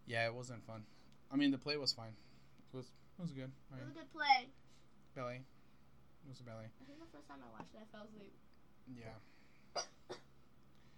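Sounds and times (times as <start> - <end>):
speech: 0.1 - 5.6, 6.2 - 10.2
person coughing: 9.8 - 10.3.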